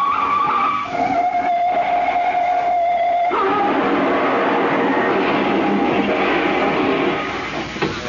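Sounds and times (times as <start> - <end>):
tires screeching: 0.0 - 7.7
car crash with crunching and clattering: 1.7 - 8.0.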